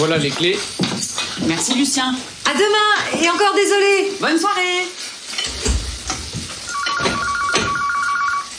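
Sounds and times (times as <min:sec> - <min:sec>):
speech: 0:00.0 - 0:05.0
clattering kitchen noises: 0:00.0 - 0:08.1
sizzling kitchen noises: 0:00.0 - 0:08.5
telephone ringing with an electronic trill: 0:06.7 - 0:08.5.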